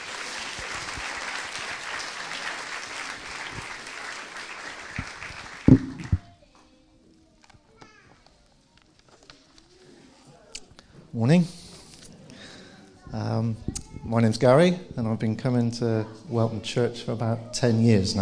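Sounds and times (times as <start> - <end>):
audience applause: 0.0 - 6.2
speech: 11.2 - 11.6, 13.4 - 18.2.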